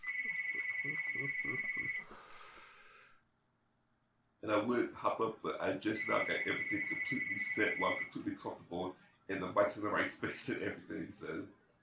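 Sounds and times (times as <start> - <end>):
phone ringing with a high electronic trill: 0.0 - 2.0, 6.0 - 8.1
speech: 4.5 - 11.6.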